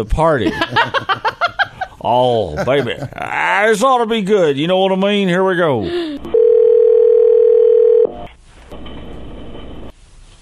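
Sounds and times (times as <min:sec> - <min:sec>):
speech: 0:00.0 - 0:01.2, 0:02.0 - 0:06.1
telephone dial tone of an outgoing call to a cell phone: 0:06.3 - 0:08.2.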